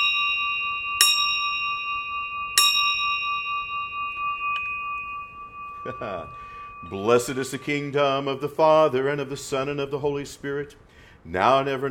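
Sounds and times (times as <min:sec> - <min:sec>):
bell struck with bright clear clangs: 0:00.0 - 0:09.5
speech: 0:05.8 - 0:11.8.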